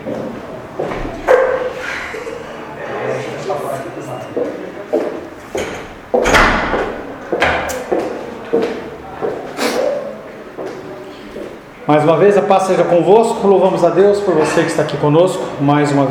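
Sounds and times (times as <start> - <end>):
voices murmuring: 0.0 - 6.1, 6.8 - 16.0
laughter: 1.6 - 3.4
door pulled shut with a solid low thud: 6.2 - 7.7
speech: 12.0 - 16.0.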